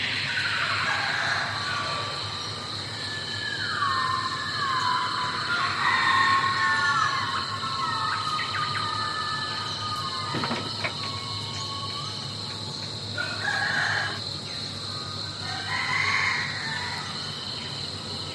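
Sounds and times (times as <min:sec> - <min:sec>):
shrill insect hum: 0:00.0 - 0:18.3
chicken crowing: 0:05.0 - 0:12.0, 0:13.2 - 0:14.3, 0:15.4 - 0:17.2.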